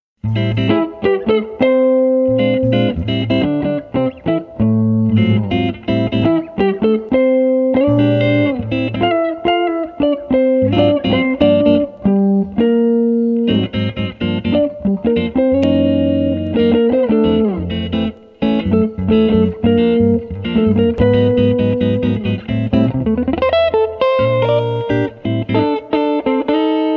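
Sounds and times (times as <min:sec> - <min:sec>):
clean electric guitar rhythm and lead on neck pickup: 0:00.2 - 0:26.9.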